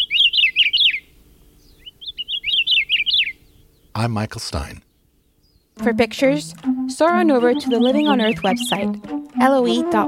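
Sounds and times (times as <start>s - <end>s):
Hawaiian akiapolaau honeycreeper calling with rapid high warbling notes: 0.0s - 3.9s, 5.3s - 10.0s
speech: 4.0s - 4.9s, 5.8s - 10.0s.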